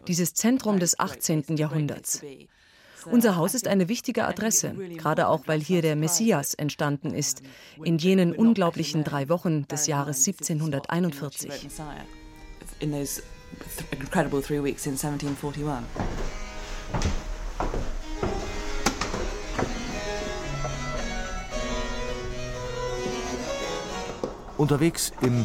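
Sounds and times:
speech: 0.0 - 12.2, 12.8 - 17.1, 24.6 - 25.4
wooden stairs creaking and groaning underfoot: 14.7 - 25.4.

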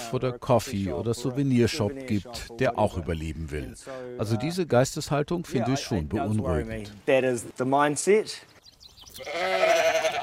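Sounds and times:
speech: 0.1 - 8.6, 9.2 - 10.2
sheep bleating: 9.2 - 10.2.

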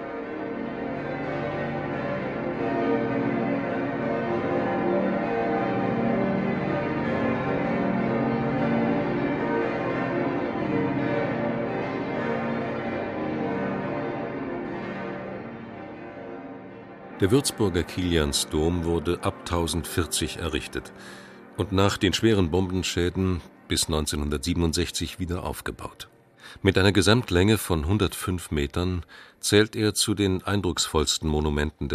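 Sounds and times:
heavy cathedral church bells pealing: 0.0 - 31.9
speech: 17.2 - 31.9.

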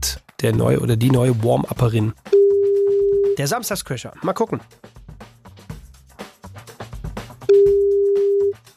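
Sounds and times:
speech: 0.0 - 2.4, 3.4 - 5.0
busy music with rhythmic beats: 0.0 - 8.7
ringback tone from an outgoing phone call with a withheld number: 2.3 - 3.4, 7.5 - 8.6.

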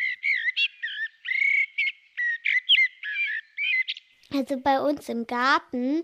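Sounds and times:
common blackbird singing fluting warbled phrases: 0.0 - 4.3
speech: 4.3 - 6.0.

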